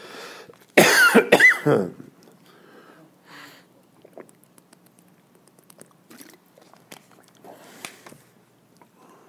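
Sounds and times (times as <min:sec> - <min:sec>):
harsh coughs from a person giving a talk: 0:00.8 - 0:02.0
faint mouth noises: 0:03.7 - 0:08.0.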